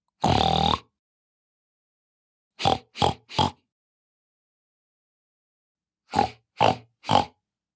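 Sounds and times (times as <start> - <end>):
person imitating pig oinks and grunts: 0.2 - 0.9, 2.6 - 3.6, 6.1 - 7.4.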